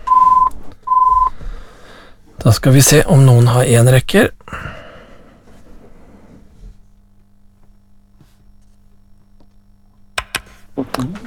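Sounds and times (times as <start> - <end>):
telephone ringing with two electronic tones: 0.1 - 1.3
speech: 2.4 - 4.6.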